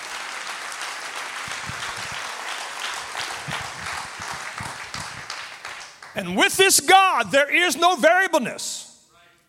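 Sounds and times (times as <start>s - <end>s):
audience clapping hands: 0.0s - 6.7s
speech: 6.2s - 8.8s.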